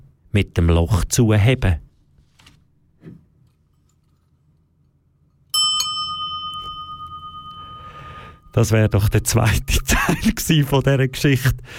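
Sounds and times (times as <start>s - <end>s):
speech: 0.4s - 1.8s, 8.5s - 11.7s
bright bell struck and ringing: 5.6s - 9.9s
laughter: 9.8s - 10.5s.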